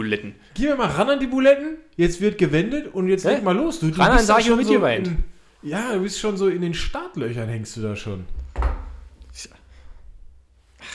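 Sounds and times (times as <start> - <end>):
speech: 0.0 - 8.4, 9.4 - 9.6
room noise: 0.0 - 10.9
bump: 8.2 - 10.9
sharp knock: 8.3 - 10.0
object banged loudly on a table: 8.3 - 10.1.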